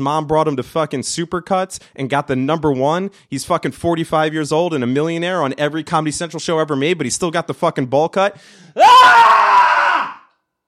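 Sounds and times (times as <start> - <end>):
speech: 0.0 - 9.8
man screaming loudly into microphone: 8.8 - 10.3.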